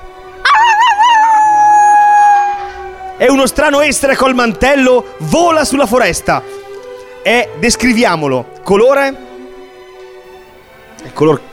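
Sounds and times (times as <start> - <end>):
dog howling: 0.4 - 3.3
speech: 3.2 - 6.6, 7.2 - 9.2, 11.2 - 11.5.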